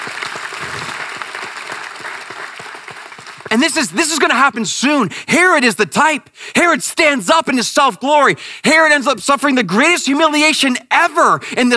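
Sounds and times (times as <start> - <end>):
audience clapping: 0.0 - 4.5
speech: 3.5 - 11.7.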